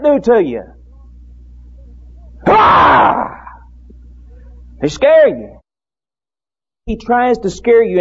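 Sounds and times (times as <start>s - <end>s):
speech: 0.0s - 0.8s, 4.8s - 5.6s, 6.9s - 7.9s
person imitating a lion roar: 2.4s - 3.6s.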